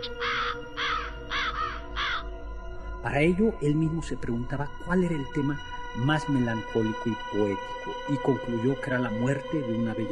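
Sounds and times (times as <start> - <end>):
raven cawing: 0.0 - 2.4
speech: 3.0 - 10.0.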